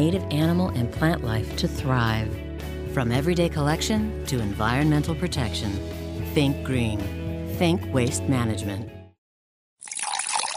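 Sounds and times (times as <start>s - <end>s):
speech: 0.0s - 9.0s
water gushing from a tap: 9.8s - 10.5s.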